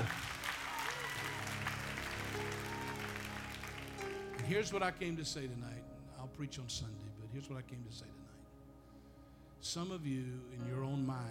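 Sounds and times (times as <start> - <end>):
crowd applauding: 0.0 - 4.9
speech: 4.5 - 8.4, 9.6 - 11.2.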